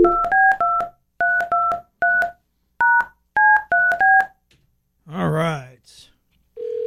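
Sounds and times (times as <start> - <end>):
touch-tone telephone keypad beeps as a number is dialed: 0.0 - 4.3.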